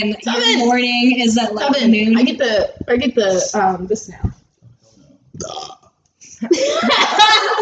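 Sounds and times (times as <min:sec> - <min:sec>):
speech: 0:00.0 - 0:04.4, 0:05.4 - 0:05.8, 0:06.4 - 0:07.6
person burping: 0:05.4 - 0:06.0
laughter: 0:06.4 - 0:07.6.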